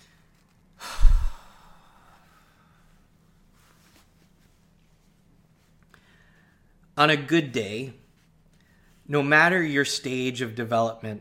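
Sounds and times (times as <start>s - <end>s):
deep breath: 0.8s - 3.0s, 5.9s - 6.8s
speech: 7.0s - 8.0s, 9.1s - 11.1s.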